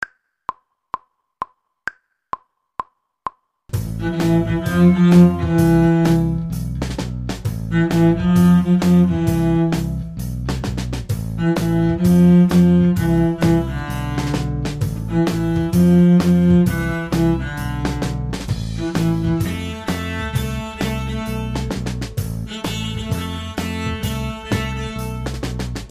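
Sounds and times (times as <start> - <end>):
cello section playing: 3.8 - 6.8, 7.5 - 10.5, 11.2 - 25.8.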